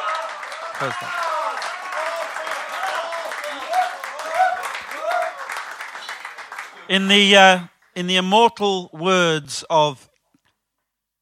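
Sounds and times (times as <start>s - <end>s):
voices and whoops: 0.0s - 6.2s
audience clapping for folk performers: 0.0s - 8.3s
speech: 0.8s - 1.2s, 6.9s - 10.1s.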